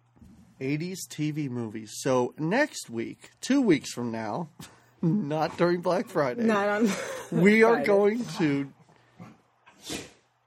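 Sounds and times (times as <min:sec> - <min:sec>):
speech: 0:00.6 - 0:08.8
small dog sneezing: 0:09.8 - 0:10.2.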